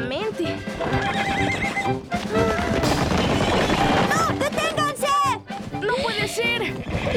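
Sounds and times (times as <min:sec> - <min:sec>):
galloping hooves of runaway horses: 0:00.1 - 0:07.1
runaway horses neighing: 0:00.7 - 0:04.1, 0:05.9 - 0:07.1.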